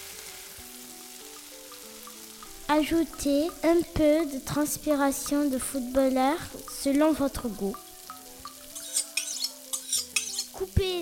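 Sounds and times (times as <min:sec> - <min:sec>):
faint stepped melody: 0:00.0 - 0:08.7
melted shampoo mixture sizzling in a frying pan: 0:00.0 - 0:11.0
speech: 0:02.7 - 0:07.8.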